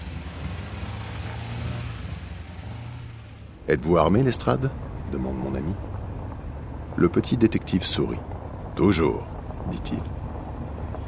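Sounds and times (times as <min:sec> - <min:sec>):
car driving with low engine rumble: 0:00.0 - 0:11.0
road hum: 0:00.0 - 0:11.0
speech: 0:03.7 - 0:06.0, 0:07.0 - 0:10.2.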